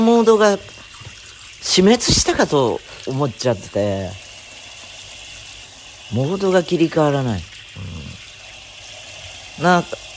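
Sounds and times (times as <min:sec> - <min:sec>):
speech: 0:00.0 - 0:00.8, 0:01.6 - 0:04.2, 0:06.1 - 0:08.0, 0:09.6 - 0:10.1
water running from a tap during a hair wash: 0:00.0 - 0:10.1.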